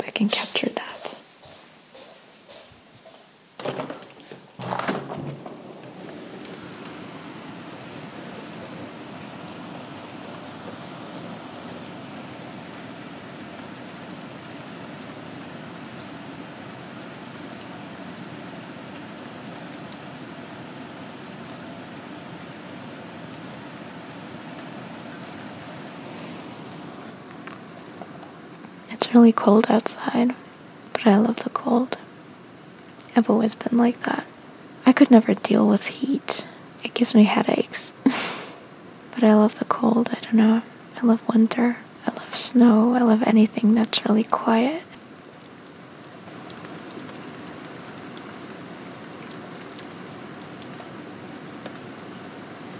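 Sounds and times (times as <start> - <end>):
steady rain falling outdoors on a cold night: 0.0 - 52.7
speech: 0.2 - 0.7, 29.1 - 30.4, 31.0 - 32.0, 33.2 - 34.3, 35.0 - 36.4, 37.0 - 37.6, 39.2 - 44.9
handling knocks: 3.6 - 6.4.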